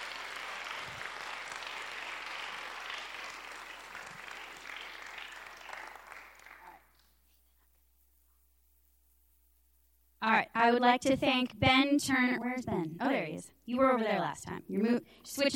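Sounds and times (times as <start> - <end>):
audience applauding for a choir and bell choir: 0.0 - 6.9
speech: 10.7 - 15.5.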